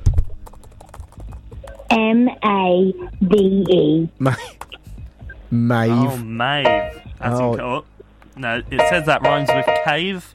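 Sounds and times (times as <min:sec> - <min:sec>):
typing on a computer keyboard: 0:00.4 - 0:01.9
speech: 0:02.0 - 0:04.6, 0:05.5 - 0:10.3.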